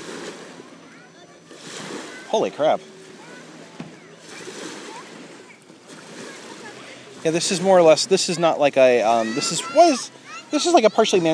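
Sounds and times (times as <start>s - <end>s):
boat wake waves splashing against a lakeshore: 0.0s - 11.3s
speech: 2.3s - 3.0s, 7.2s - 11.3s
person exclaiming: 9.0s - 10.8s.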